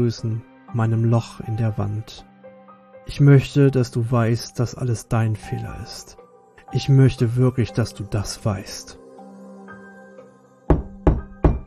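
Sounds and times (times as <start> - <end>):
speech: 0.0 - 2.3, 3.1 - 9.0
heavy knocks: 10.7 - 11.6.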